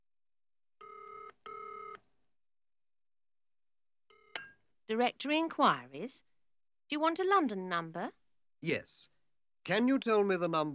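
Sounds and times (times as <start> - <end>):
push-button telephone dialing tones for directory inquiries: 0.8 - 2.0
speech: 4.9 - 6.3, 6.9 - 10.7.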